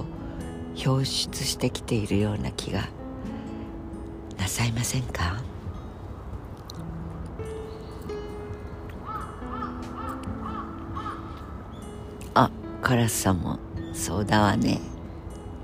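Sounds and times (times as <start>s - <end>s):
speech: 0.8s - 3.0s, 4.5s - 5.5s, 12.4s - 14.9s
crow cawing: 9.0s - 11.9s.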